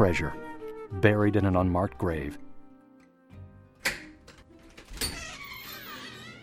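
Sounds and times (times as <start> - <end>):
speech: 0.0 - 2.5
heavy black metal door latch clunk: 3.8 - 5.4
heavy black metal door pushed open with scraping creak and thud: 3.8 - 6.4.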